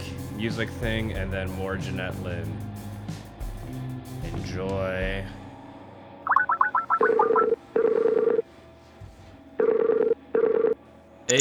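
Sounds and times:
speech: 0:00.4 - 0:02.8, 0:04.3 - 0:05.4
mobile phone electronic ringtone with warbling chirps and buzzy tones: 0:06.3 - 0:08.4, 0:09.6 - 0:11.3.

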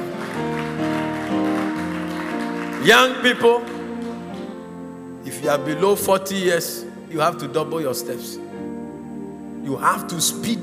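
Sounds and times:
audience clapping: 0:00.0 - 0:04.7
sustained keyboard or organ chords: 0:00.0 - 0:10.6
speech: 0:02.8 - 0:03.8, 0:05.4 - 0:08.5, 0:09.7 - 0:10.6.

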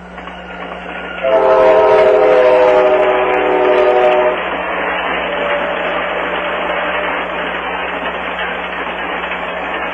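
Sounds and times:
Amtrak passenger train from Chicago to California rumbling and clattering past: 0:00.0 - 0:09.9
Amtrak passenger train horn multi-tone blast: 0:01.2 - 0:04.4.

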